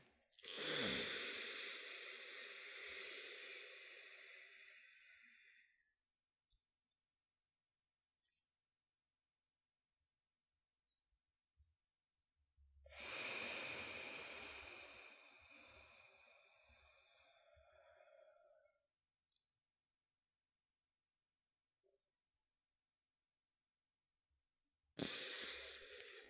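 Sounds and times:
slow pranayama inhalation through the left nostril: 0.4s - 5.7s, 12.9s - 18.6s, 25.0s - 26.2s.

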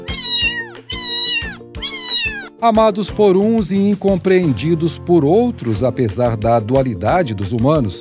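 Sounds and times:
cat meowing: 0.0s - 2.6s
speech: 2.6s - 8.0s.

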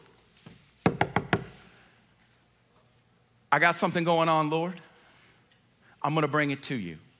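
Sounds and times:
firm knocks on a wooden door: 0.9s - 1.5s
speech: 3.5s - 4.9s, 6.0s - 7.0s.

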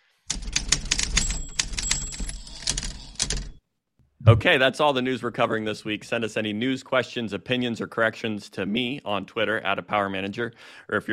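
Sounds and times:
typewriter keys clacking: 0.3s - 3.6s
speech: 4.2s - 11.1s.

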